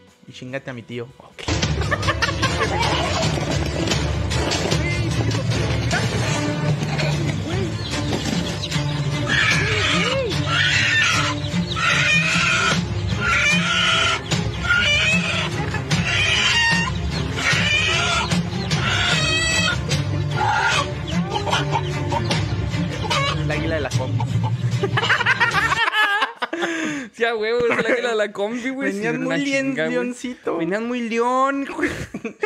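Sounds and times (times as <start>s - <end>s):
speech: 0.3s - 6.2s, 27.2s - 32.4s
laughter: 1.5s - 4.1s, 24.0s - 30.1s, 31.7s - 32.4s
flock of chickens and running chicks clucking in a played video: 1.5s - 25.5s.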